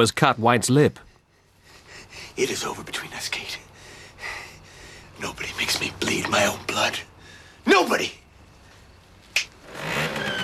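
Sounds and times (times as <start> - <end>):
speech: 0.0 - 1.1, 2.4 - 3.7, 5.2 - 8.2
moped engine revving as it rides up to a gate: 9.6 - 10.4.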